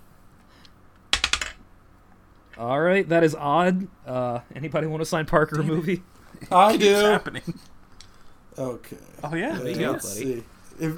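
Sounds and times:
dice rolling and clacking on a hard surface: 1.1s - 1.6s
speech: 2.6s - 7.8s, 8.6s - 10.9s.

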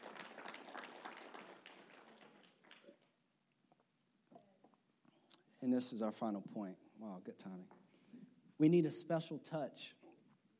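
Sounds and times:
audience clapping: 0.0s - 3.2s
speech: 5.6s - 7.8s, 8.6s - 10.0s.

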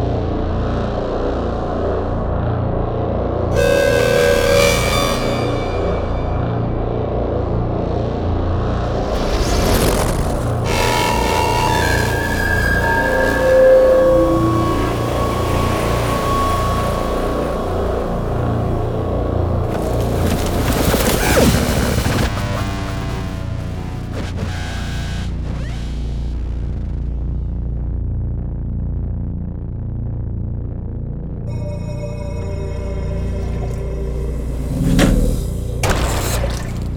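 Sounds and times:
dense low cinematic drone: 0.0s - 36.9s
metallic tones: 3.5s - 7.3s, 10.6s - 19.6s, 31.5s - 36.9s
bright sweeping impacts: 3.5s - 8.1s, 8.7s - 19.6s, 31.5s - 36.9s
sharp glitchy accents: 3.6s - 7.3s, 8.9s - 26.0s, 31.5s - 36.9s.

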